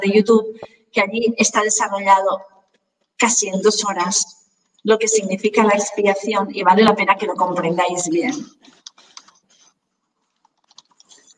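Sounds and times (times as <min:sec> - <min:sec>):
speech: 0:00.0 - 0:02.5, 0:03.2 - 0:09.0
typing on a computer keyboard: 0:10.2 - 0:11.3.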